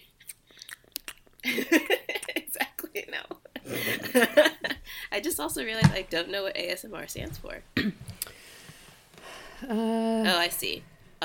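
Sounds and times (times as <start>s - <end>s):
chewing: 0.2s - 1.4s
laughter: 3.6s - 4.8s
speech: 4.1s - 4.5s, 5.2s - 8.0s, 9.6s - 10.9s.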